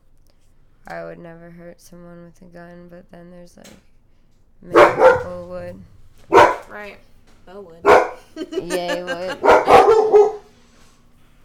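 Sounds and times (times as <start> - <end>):
speech: 0.9 - 3.9, 4.6 - 10.3
dog barking sharp and throaty: 4.7 - 6.8, 7.8 - 8.4, 9.1 - 10.5
laughter: 8.2 - 10.2.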